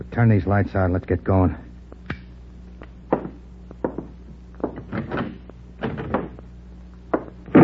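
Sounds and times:
speech: 0:00.1 - 0:01.7
knocks and bumps from something being handled: 0:03.1 - 0:06.4, 0:07.1 - 0:07.6
door being kicked shut: 0:04.7 - 0:06.4, 0:07.2 - 0:07.6.

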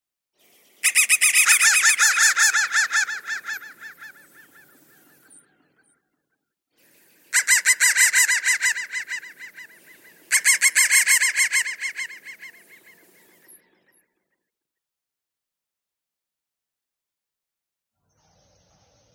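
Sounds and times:
crow calling harshly: 0:00.8 - 0:04.8, 0:07.3 - 0:13.0.

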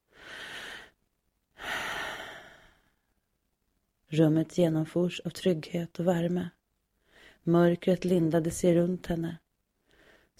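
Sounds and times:
slow airy inhalations: 0:00.0 - 0:01.0, 0:01.6 - 0:03.2, 0:07.0 - 0:07.4, 0:09.8 - 0:10.3
speech: 0:04.1 - 0:06.6, 0:07.4 - 0:09.4.

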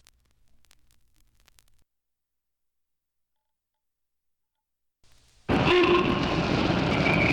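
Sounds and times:
passenger train roaring past: 0:05.5 - 0:07.3.

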